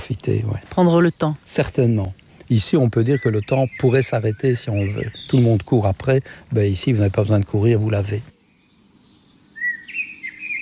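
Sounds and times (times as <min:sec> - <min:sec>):
small birds chirping and twittering in a garden in the morning: 0:00.0 - 0:10.6
speech: 0:00.1 - 0:08.3.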